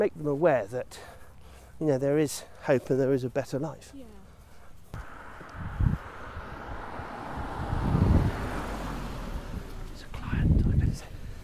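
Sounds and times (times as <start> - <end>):
speech: 0.0 - 1.2, 1.8 - 4.2
car engine rumbling along a road: 4.8 - 11.4
wind buffeting the microphone: 4.9 - 11.4.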